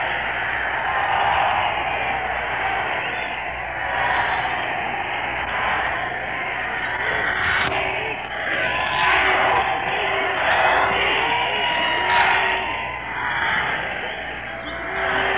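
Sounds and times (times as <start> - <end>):
large crowd roar of overlapping voices: 0.0 - 15.3
people yelling for a speech: 0.0 - 15.3.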